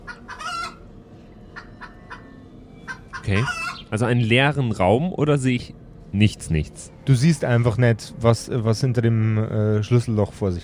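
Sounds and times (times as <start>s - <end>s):
chickens clucking: 0.0s - 4.1s
low steady rumble: 0.0s - 10.6s
speech: 3.3s - 10.6s.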